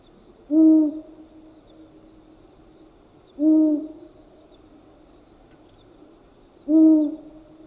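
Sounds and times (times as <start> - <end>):
quiet hiss: 0.0 - 7.6
male owl hooting: 0.5 - 1.1, 3.4 - 4.0, 6.7 - 7.3.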